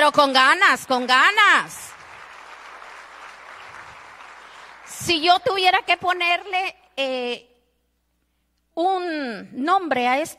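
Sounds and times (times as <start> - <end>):
speech: 0.0 - 1.9, 5.0 - 7.5, 8.8 - 10.3
audience applauding: 0.9 - 5.3.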